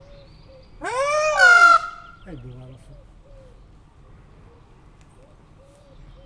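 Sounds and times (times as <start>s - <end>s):
peacock calling in a zoo: 0.0s - 3.6s.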